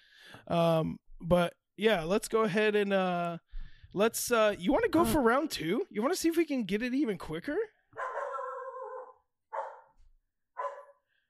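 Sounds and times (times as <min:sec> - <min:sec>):
speech: 0:00.4 - 0:07.8
dog barking with howling and sharp barks: 0:08.0 - 0:10.0, 0:10.6 - 0:11.1.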